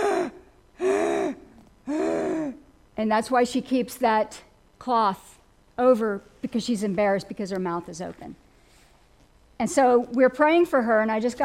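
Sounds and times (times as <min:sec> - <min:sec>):
voice imitating gasping breaths: 0:00.0 - 0:02.6
speech: 0:03.0 - 0:08.4, 0:09.6 - 0:11.4.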